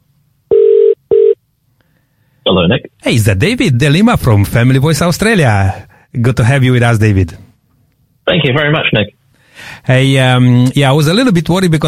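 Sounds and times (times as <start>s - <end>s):
electronic ring tones of a phone call being placed: 0.5s - 1.4s
speech: 2.5s - 7.4s, 8.3s - 11.8s.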